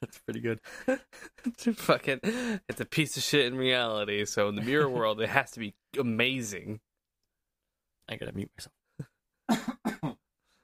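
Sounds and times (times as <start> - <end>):
speech: 0.1 - 6.9, 8.1 - 10.2
loud coughing: 9.5 - 10.3.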